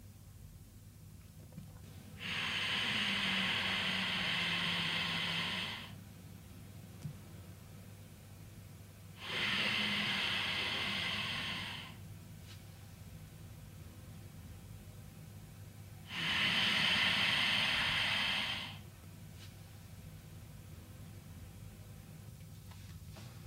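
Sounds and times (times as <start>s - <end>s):
gentle smooth breathing through a slightly tightened throat: 1.9s - 6.0s, 9.2s - 12.0s, 16.1s - 18.9s.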